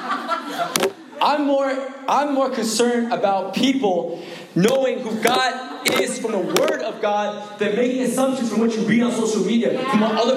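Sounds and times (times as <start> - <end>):
laughter: 0.0 - 1.2, 5.9 - 7.1
hand slapping on a book: 0.8 - 1.0, 4.7 - 6.8
speech: 0.8 - 10.3
man preaching: 1.2 - 10.3.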